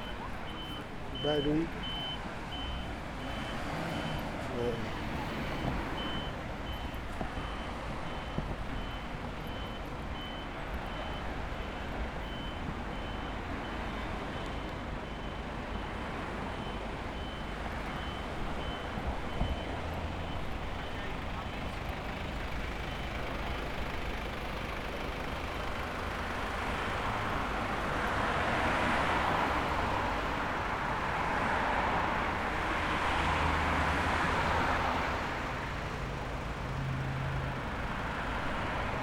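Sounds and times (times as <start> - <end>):
faint reversing beep: 0.0 - 26.2
dense traffic rumble of trucks and cars on a motorway: 0.0 - 39.0
speech: 1.2 - 1.9, 4.6 - 5.0.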